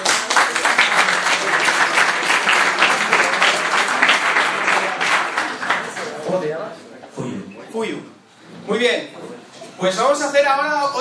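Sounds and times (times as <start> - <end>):
audience applause for a volunteer at a talk: 0.0 - 6.2
speech: 8.7 - 10.9.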